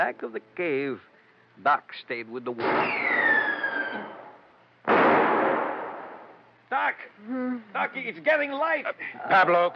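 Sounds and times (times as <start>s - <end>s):
speech: 0.0s - 4.1s, 6.7s - 9.7s
gunshot during a shootout in a cave: 2.6s - 6.4s.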